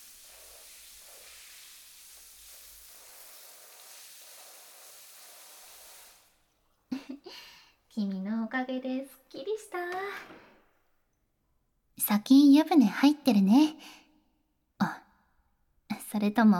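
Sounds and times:
shower spray rinsing off soap suds: 0:00.0 - 0:06.5
water splashes and drips: 0:00.0 - 0:06.5
speech: 0:08.0 - 0:10.5, 0:12.1 - 0:14.0, 0:16.2 - 0:16.5.

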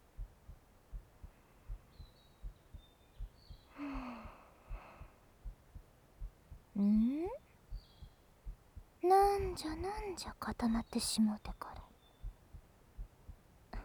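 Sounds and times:
heartbeat heard through a person's chest: 0:00.0 - 0:10.9, 0:12.2 - 0:13.8
soft breathy exhale: 0:03.7 - 0:05.2
speech: 0:09.6 - 0:11.7.

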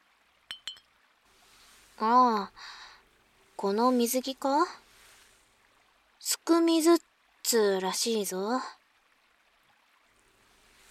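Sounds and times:
glass ramune bottles clinking in a toast: 0:00.5 - 0:00.9
speech: 0:02.0 - 0:02.8, 0:03.6 - 0:04.8, 0:06.2 - 0:08.8.

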